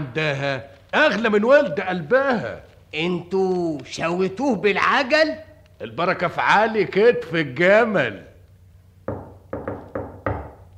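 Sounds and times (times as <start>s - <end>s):
speech: 0.1s - 8.3s
knocking on a door: 9.0s - 10.7s.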